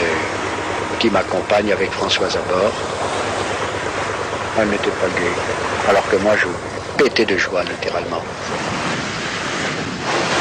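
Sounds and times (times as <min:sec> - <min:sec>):
sea waves heard from aboard a small solo sailboat: 0:00.0 - 0:10.4
speech: 0:01.0 - 0:03.2, 0:04.6 - 0:08.8
wind noise over the microphone: 0:08.2 - 0:10.4.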